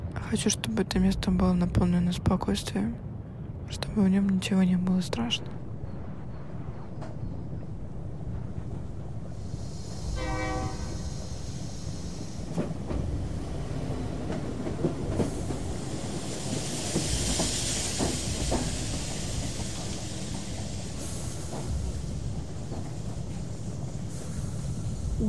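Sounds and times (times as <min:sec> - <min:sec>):
speech: 0:00.2 - 0:03.1, 0:03.7 - 0:05.6
loud steady hiss of steam from train: 0:09.3 - 0:14.3, 0:14.9 - 0:25.2
train horn blast at central railway station: 0:10.2 - 0:11.0.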